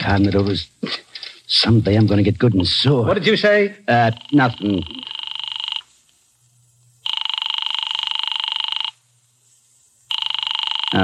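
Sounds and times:
speech: 0:00.0 - 0:05.0
telephone ringing: 0:03.9 - 0:05.9, 0:07.0 - 0:09.0, 0:10.1 - 0:11.0.

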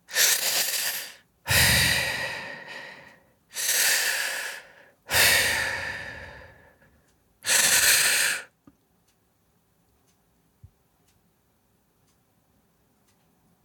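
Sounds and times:
rasping breathing of a dying person: 0:00.1 - 0:08.5.

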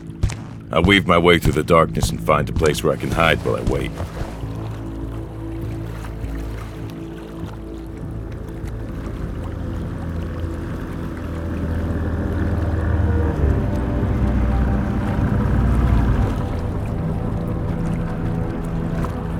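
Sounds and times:
small skiff engine droning while pulling up at a dock: 0:00.0 - 0:19.3
water rumble at a dock: 0:00.0 - 0:19.3
speech: 0:00.7 - 0:04.3.

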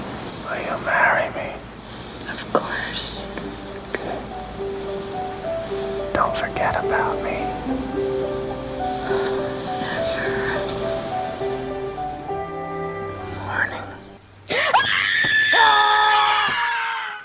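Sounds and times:
busy tonal sound: 0:00.0 - 0:14.5
speech: 0:00.5 - 0:01.7
woman screaming in a film clip: 0:14.5 - 0:17.2.

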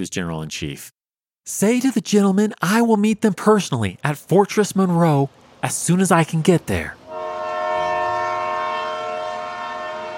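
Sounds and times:
speech: 0:00.0 - 0:07.0
train horn at a station platform: 0:07.1 - 0:10.1.

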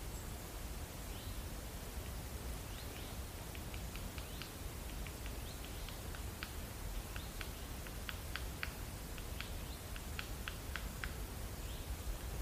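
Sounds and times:
woodland background noise in silver birch and oak woodland: 0:00.0 - 0:12.4
nuthatch hammering a nut wedged in tree bark: 0:03.4 - 0:11.3, 0:12.2 - 0:12.4.

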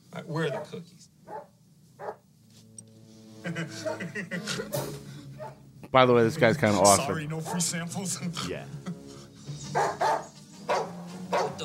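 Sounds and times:
speech: 0:00.3 - 0:01.5, 0:03.4 - 0:09.0, 0:09.7 - 0:10.1
dog barking: 0:00.5 - 0:02.2, 0:05.4 - 0:05.6, 0:07.4 - 0:07.7, 0:09.7 - 0:11.6
laughter: 0:03.4 - 0:05.0.

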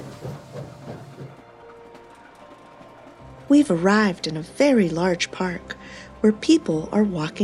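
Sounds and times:
train wheels clacking on rails: 0:00.0 - 0:04.2
speech: 0:03.5 - 0:07.4.

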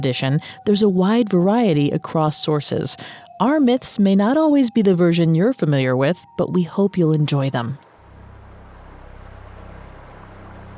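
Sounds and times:
speech: 0:00.0 - 0:07.9
low droning boat rumble: 0:07.8 - 0:10.7
rushing river water from a moving boat: 0:07.8 - 0:10.7.

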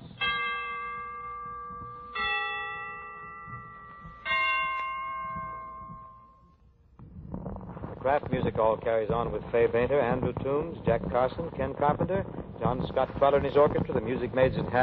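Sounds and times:
Christmas church bells ringing: 0:00.0 - 0:06.7
speech: 0:08.1 - 0:14.8.

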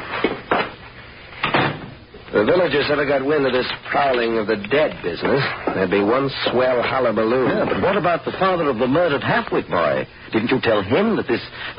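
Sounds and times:
door shutting with a solid clunk: 0:01.4 - 0:02.0
speech: 0:02.3 - 0:11.7.

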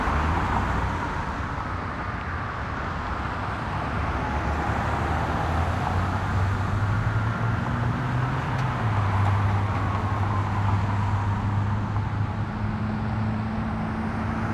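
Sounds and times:
dense traffic roar beside a busy road: 0:00.0 - 0:14.5.

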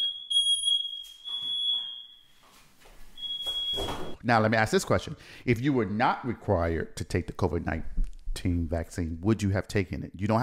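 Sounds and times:
smoke alarm beeping set off by hookah smoke: 0:00.0 - 0:04.2
speech: 0:03.8 - 0:10.4.

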